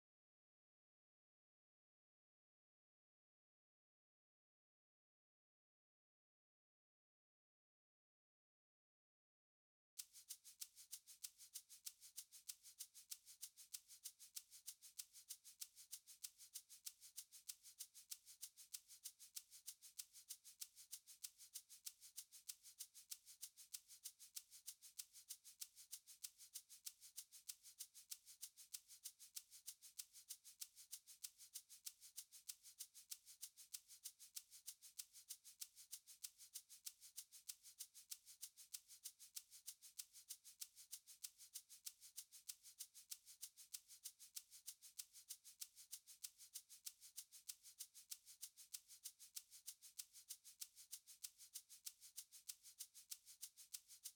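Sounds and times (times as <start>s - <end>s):
shaker percussion: 10.0s - 54.1s.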